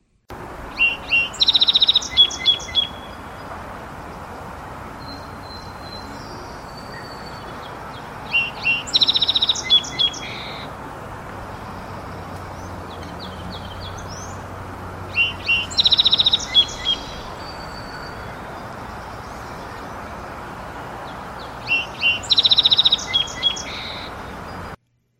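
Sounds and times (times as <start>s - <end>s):
steady outdoor hiss: 0.0s - 24.8s
faint birdsong: 0.3s - 24.8s
song sparrow singing with repeated notes and buzzy trills: 0.3s - 24.8s.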